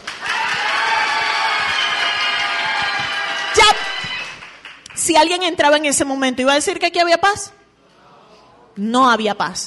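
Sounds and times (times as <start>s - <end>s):
audience clapping: 0.0s - 5.3s
audience shouting: 0.2s - 4.4s
feet stomping on the floor: 2.6s - 3.3s
speech: 5.1s - 7.6s, 8.8s - 9.6s.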